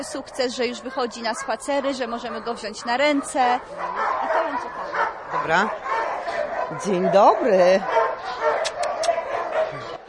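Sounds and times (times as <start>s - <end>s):
speech: 0.0s - 5.8s, 6.7s - 8.0s
frightened knee-high black-and-tan dog barking and yelping: 0.0s - 10.0s.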